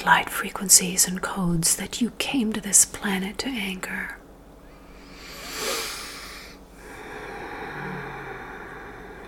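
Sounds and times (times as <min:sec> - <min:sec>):
speech: 0:00.0 - 0:04.2
slow deep breathing in and out: 0:04.6 - 0:09.2.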